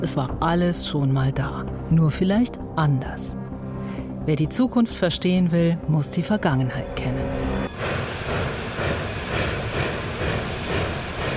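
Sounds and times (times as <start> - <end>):
speech: 0.0 - 7.9
train rumbling at a railway station platform: 6.8 - 11.3.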